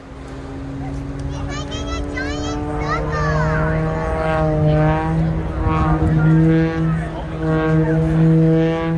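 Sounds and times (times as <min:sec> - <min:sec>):
aerobatic plane propeller tumbling end over end: 0:00.0 - 0:08.9
young child's excited voice: 0:01.3 - 0:04.3.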